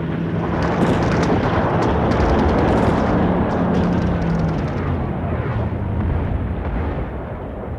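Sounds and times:
continuous rumbling artillery fire: 0.4s - 7.7s
explosions with heavy low booms and sharp cracks: 0.4s - 7.7s.

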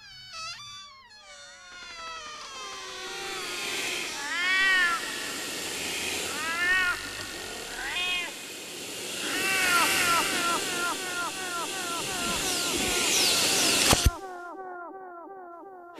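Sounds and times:
many cats meowing in a plaintive chorus: 2.4s - 8.4s, 9.2s - 14.2s.

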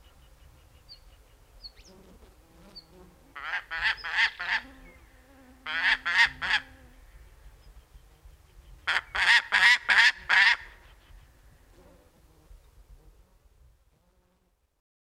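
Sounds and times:
female gyrfalcon harsh chattering calls: 3.4s - 4.6s, 5.7s - 6.7s, 8.9s - 10.7s.

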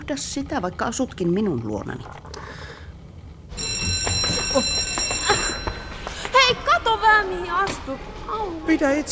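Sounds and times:
speech: 0.1s - 2.6s, 6.5s - 9.0s
school bell ringing: 3.5s - 7.5s.

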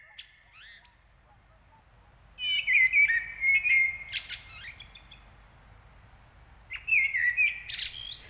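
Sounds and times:
Eurasian blackbird singing flute-like song: 0.0s - 1.1s, 2.4s - 5.3s, 6.7s - 8.2s.

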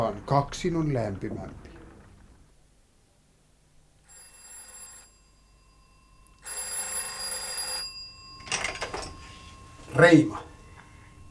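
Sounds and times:
speech: 0.0s - 1.7s, 10.0s - 10.5s
old-fashioned telephone bell ringing in a telephone booth: 4.0s - 11.2s.

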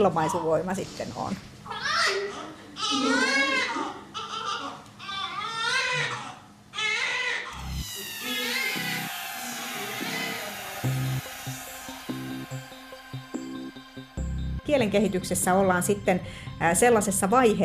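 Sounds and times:
speech: 0.0s - 2.3s, 2.9s - 4.0s, 14.7s - 17.6s
newborn baby crying: 1.7s - 14.0s
steady tonal sound: 7.6s - 16.6s.

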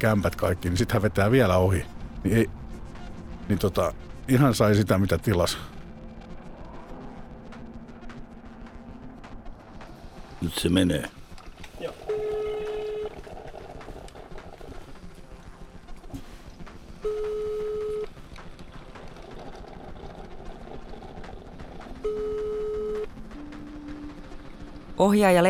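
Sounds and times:
speech: 0.0s - 2.6s, 3.5s - 5.7s, 10.4s - 11.2s, 25.0s - 25.4s
phone ringback tone: 12.1s - 13.2s, 17.0s - 18.1s, 22.0s - 23.1s.

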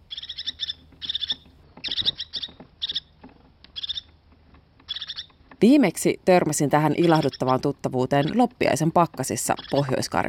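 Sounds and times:
crested tit calling in high thin trilling chirps in a spruce forest: 0.0s - 4.2s, 4.8s - 5.4s, 6.8s - 10.2s
speech: 5.6s - 10.2s.

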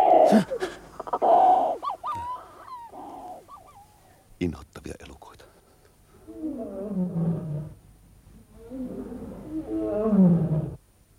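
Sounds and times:
speech: 0.3s - 1.3s, 4.4s - 5.0s
lions roaring: 6.2s - 7.8s, 8.4s - 10.8s.

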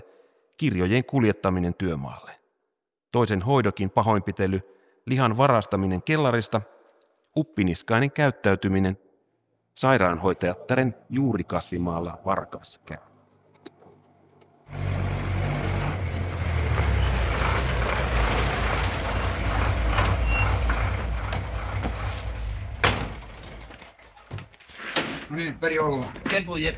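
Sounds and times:
speech: 0.6s - 2.4s, 3.1s - 6.8s, 7.4s - 9.0s, 9.8s - 13.1s, 25.3s - 26.7s
workhouse vehicle engine rumbling on institution grounds in Helsinki: 14.1s - 24.3s.

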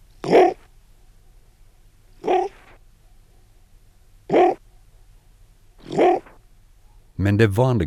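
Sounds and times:
wild animal growling and hissing: 0.2s - 0.6s, 2.2s - 2.8s, 4.3s - 4.6s, 5.8s - 6.4s
speech: 7.2s - 7.8s.

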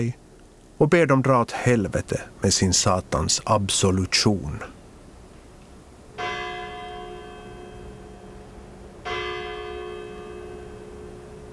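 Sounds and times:
speech: 0.0s - 0.2s, 0.8s - 4.8s
church bell tolling: 6.2s - 11.5s.

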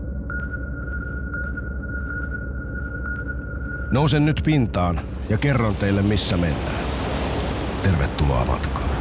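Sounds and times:
echo sounder sonar pings: 0.0s - 4.2s
speech: 3.9s - 7.0s, 7.8s - 8.9s.

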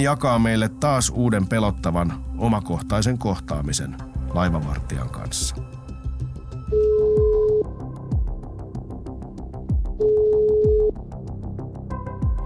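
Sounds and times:
speech: 0.0s - 5.8s
rhythmic music: 0.0s - 12.4s
phone call ringing tone: 6.7s - 7.7s, 10.0s - 10.9s.

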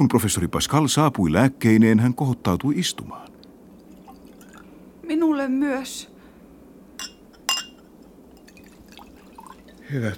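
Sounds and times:
speech: 0.0s - 3.3s, 5.2s - 6.1s, 9.9s - 10.1s
glasses clinking in a toast: 7.0s - 9.8s.

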